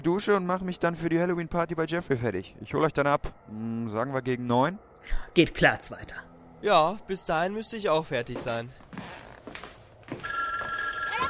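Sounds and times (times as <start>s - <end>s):
speech: 0.0s - 9.6s
home telephone ringing with electronic trill: 10.2s - 11.2s.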